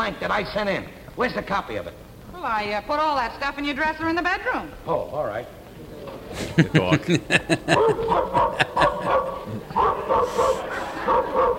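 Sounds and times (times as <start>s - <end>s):
speech: 0.1s - 5.6s, 6.3s - 11.5s
laughter: 6.3s - 11.5s
dog barking in sharp yips: 7.7s - 11.5s.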